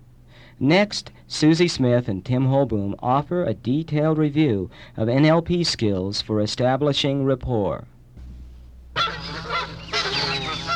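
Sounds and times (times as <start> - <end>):
speech: 0.5 - 7.9
flock of geese honking: 8.2 - 10.7.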